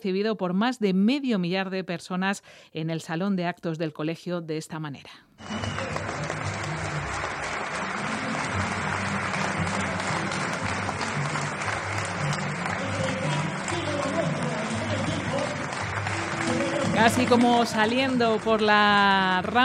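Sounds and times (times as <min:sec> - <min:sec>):
speech: 0:00.0 - 0:05.8, 0:17.0 - 0:19.6
murmur of voices: 0:05.4 - 0:18.5
applause from over five hundred people in a school assembly hall: 0:05.4 - 0:19.6.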